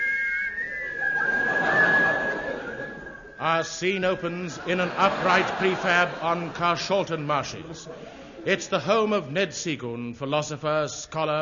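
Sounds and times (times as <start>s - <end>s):
person whistling a theme tune: 0.0s - 4.3s
light hiss of noise: 0.0s - 11.4s
laughter: 0.6s - 9.3s
speech: 3.4s - 11.4s.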